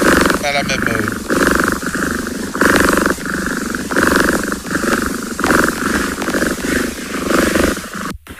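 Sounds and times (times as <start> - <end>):
domestic cat purring: 0.0 - 8.3
speech: 0.4 - 1.1.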